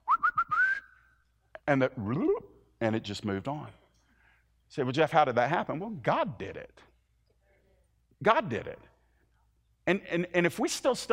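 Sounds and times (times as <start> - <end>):
person whistling as if calling a dog: 0.0 - 1.2
speech: 1.7 - 3.8, 4.7 - 6.9, 8.2 - 8.9, 9.9 - 11.1.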